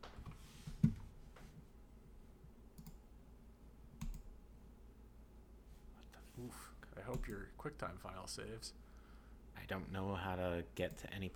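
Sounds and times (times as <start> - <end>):
low noise: 0.0 - 11.3
computer keyboard and mouse clicking: 4.0 - 4.3
speech: 6.4 - 8.8, 9.7 - 11.3.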